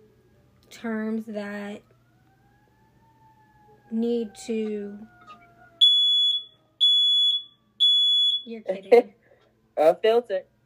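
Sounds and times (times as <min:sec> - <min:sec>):
speech: 0:00.8 - 0:01.9, 0:03.9 - 0:05.2, 0:08.5 - 0:09.2, 0:09.8 - 0:10.5
smoke alarm beeping: 0:05.8 - 0:08.5.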